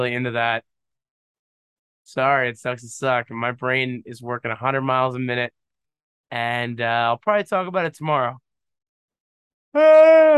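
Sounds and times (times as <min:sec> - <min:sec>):
speech: 0:00.0 - 0:00.7, 0:02.1 - 0:05.6, 0:06.3 - 0:08.4, 0:09.7 - 0:10.3
voiced yawn: 0:09.8 - 0:10.3.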